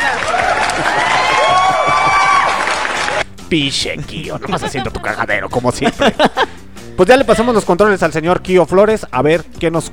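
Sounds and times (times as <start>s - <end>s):
many voices whooping and shouting: 0.0s - 3.2s
crowd applause and cheering: 0.0s - 3.3s
speech: 3.5s - 9.9s
laughter: 4.2s - 6.6s.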